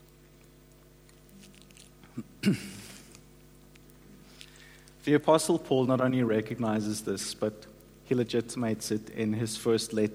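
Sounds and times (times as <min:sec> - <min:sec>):
person sipping water: 0:01.0 - 0:03.2, 0:03.8 - 0:05.0
speech: 0:02.2 - 0:02.8, 0:05.0 - 0:10.1.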